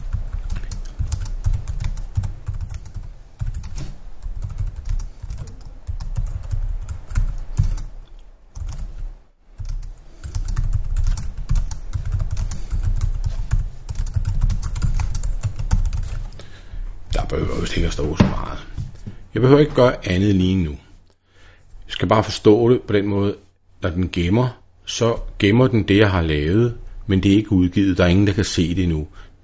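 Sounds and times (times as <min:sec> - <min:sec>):
typing on a computer keyboard: 0:00.0 - 0:07.9, 0:08.6 - 0:09.0, 0:09.6 - 0:16.2
low hum: 0:00.0 - 0:29.4
speech: 0:18.0 - 0:18.7, 0:19.4 - 0:20.8, 0:21.9 - 0:29.3.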